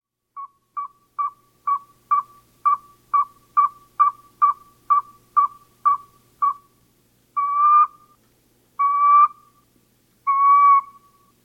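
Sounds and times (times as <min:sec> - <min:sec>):
northern saw-whet owl giving whistled toots: 0:00.4 - 0:06.7, 0:07.4 - 0:08.2, 0:08.8 - 0:09.6, 0:10.2 - 0:11.3.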